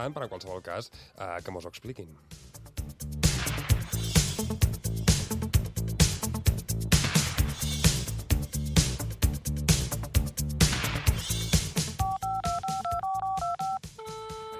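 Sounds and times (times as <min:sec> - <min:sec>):
speech: 0:00.0 - 0:03.2
upbeat music: 0:00.0 - 0:14.5
touch-tone telephone dialing beeps: 0:12.0 - 0:14.5.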